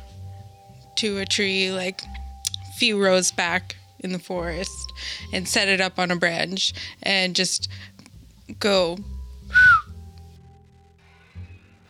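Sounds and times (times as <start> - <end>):
speech: 1.0 - 2.2, 2.8 - 7.9, 8.6 - 9.1
short sharp human whistle as a command for an animal to stay: 9.5 - 9.9.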